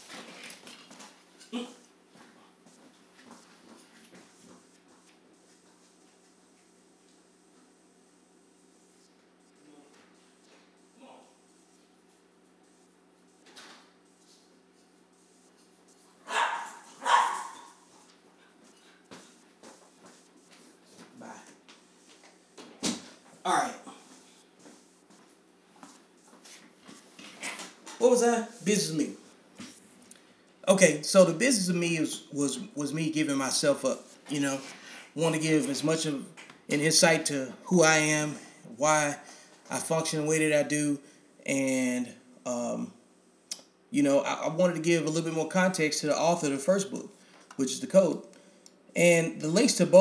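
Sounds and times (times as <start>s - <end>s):
low steady indoor hum: 0.0s - 49.9s
speech: 1.5s - 1.8s, 28.0s - 29.2s, 30.7s - 43.0s, 43.9s - 48.3s, 49.0s - 49.9s
dog barking to come in: 16.3s - 17.7s.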